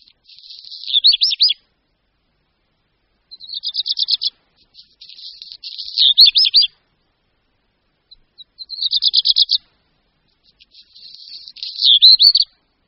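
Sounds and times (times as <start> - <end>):
black redstart song with scratchy passage: 0.0 - 1.6, 3.2 - 6.8, 8.0 - 12.6.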